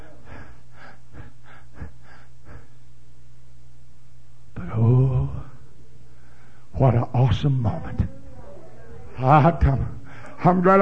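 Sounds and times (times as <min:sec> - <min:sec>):
person imitating labored gasping breathing of a seriously ill woman: 0:00.0 - 0:02.8
low hum: 0:00.0 - 0:10.8
speech: 0:06.8 - 0:08.2, 0:09.2 - 0:10.8.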